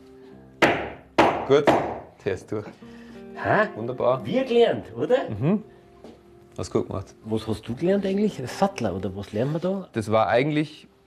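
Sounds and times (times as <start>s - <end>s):
hammer blows striking a slot punch into leather: 0.6s - 2.1s
speech: 1.5s - 5.7s, 6.6s - 10.9s.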